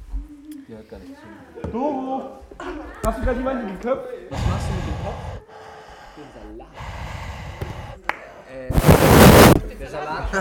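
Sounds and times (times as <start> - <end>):
speech: 0.7 - 5.4, 6.2 - 7.1, 8.5 - 9.1, 9.8 - 10.3
heavy breathing into a microphone: 4.3 - 9.6.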